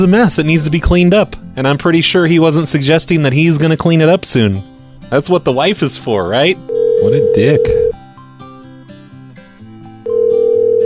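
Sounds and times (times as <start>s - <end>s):
speech: 0.0s - 7.9s
telephone sounding a loud steady electronic tone: 6.7s - 8.0s, 10.0s - 10.8s.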